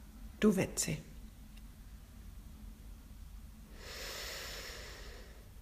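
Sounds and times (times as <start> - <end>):
speech: 0.4 - 1.1
long inhalation through the nose during a guided breathing exercise: 3.7 - 5.5.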